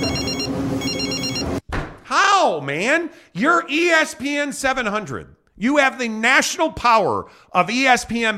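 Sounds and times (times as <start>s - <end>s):
telephone ringing with bright trilling bursts: 0.0s - 1.6s
speech: 2.4s - 8.3s.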